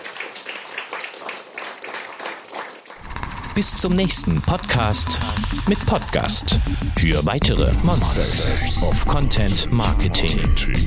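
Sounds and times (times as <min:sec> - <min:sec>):
audience applause: 0:00.0 - 0:04.8
speech: 0:03.6 - 0:10.8.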